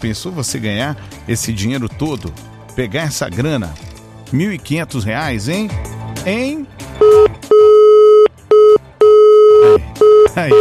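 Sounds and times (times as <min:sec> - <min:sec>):
speech: 0:00.0 - 0:07.2, 0:10.4 - 0:10.5
loud telephone busy signal: 0:07.0 - 0:10.5.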